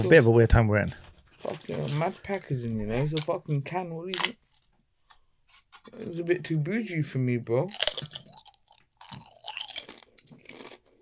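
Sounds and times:
speech: 0:00.0 - 0:04.4, 0:05.8 - 0:08.2
crisp snack being bitten and chewed: 0:07.7 - 0:11.0.

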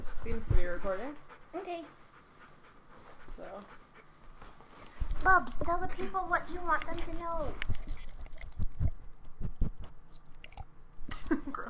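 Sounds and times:
speech: 0:00.2 - 0:02.0, 0:03.4 - 0:03.8, 0:05.2 - 0:07.8
dog gnawing and biting on a ball: 0:04.9 - 0:10.8.

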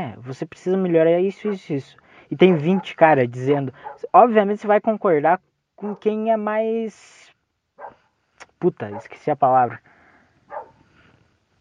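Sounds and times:
speech: 0:00.0 - 0:07.3, 0:08.6 - 0:09.9
single short dog bark: 0:01.4 - 0:01.6, 0:02.6 - 0:04.1, 0:07.8 - 0:08.0, 0:08.9 - 0:09.2, 0:10.5 - 0:10.8.

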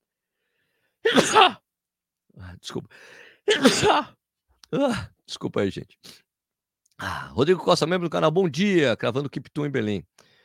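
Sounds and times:
person sneezing: 0:01.0 - 0:01.6, 0:03.5 - 0:04.2
speech: 0:01.1 - 0:01.6, 0:02.4 - 0:06.2, 0:07.0 - 0:10.2.

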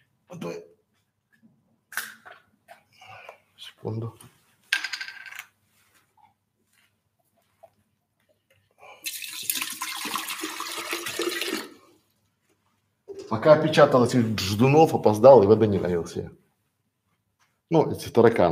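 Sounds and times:
speech: 0:00.4 - 0:00.7, 0:03.8 - 0:04.4, 0:13.3 - 0:16.4, 0:17.7 - 0:18.5
water pouring into a glass: 0:09.0 - 0:12.0.

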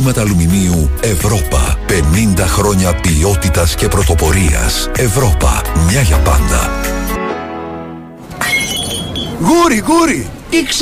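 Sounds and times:
speech: 0:00.1 - 0:07.0, 0:09.4 - 0:10.8
drinking glass shattering: 0:08.3 - 0:09.4
drinking glass shards tinkling: 0:08.4 - 0:09.4.

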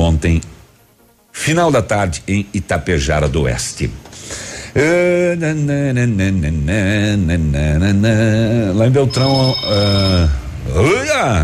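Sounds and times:
speech: 0:00.0 - 0:00.6, 0:01.4 - 0:11.4
loud electronic telephone ringtone: 0:09.0 - 0:10.6.

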